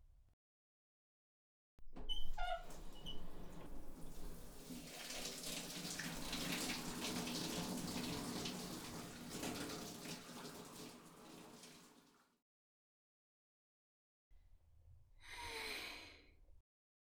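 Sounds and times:
shower spraying: 2.2s - 12.1s.

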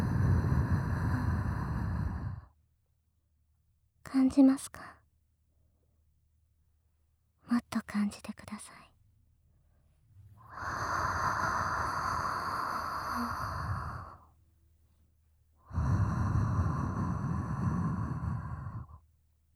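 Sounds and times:
heavy breathing: 0.0s - 2.5s, 10.4s - 14.2s, 15.6s - 19.0s
speech: 4.1s - 5.0s, 7.5s - 8.9s.

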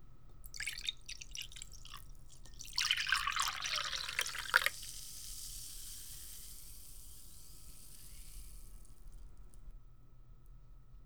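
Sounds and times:
drink poured from a freshly opened bottle into a glass: 0.4s - 9.2s.

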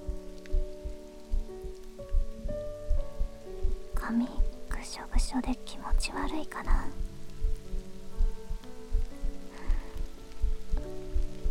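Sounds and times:
steady rain pattering on a hard surface: 0.0s - 2.4s, 3.0s - 11.4s
soft low thumps: 0.0s - 11.4s
speech: 4.1s - 7.1s.

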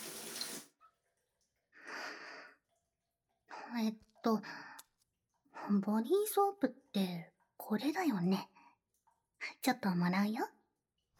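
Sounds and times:
shower spraying then turned off: 0.0s - 0.7s
speech: 3.7s - 4.7s, 5.6s - 8.5s, 9.6s - 10.6s.

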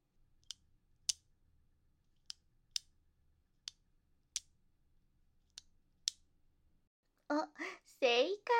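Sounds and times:
ballpoint pen clicking: 0.4s - 1.3s, 2.1s - 4.6s, 5.4s - 6.3s.

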